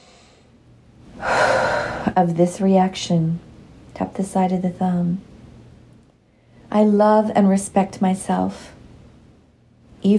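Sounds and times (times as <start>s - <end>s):
deep inhaled breath during a guided tapping exercise: 1.2s - 2.2s
speech: 2.1s - 5.3s, 6.8s - 8.8s.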